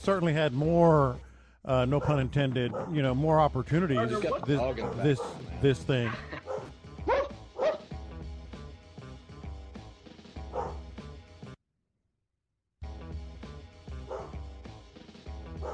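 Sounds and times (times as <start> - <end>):
speech: 0.0 - 6.4
dog barking: 1.9 - 3.0, 4.1 - 5.4, 6.4 - 7.9, 10.5 - 10.9, 14.0 - 14.4, 15.5 - 15.7
laughter: 3.7 - 6.7.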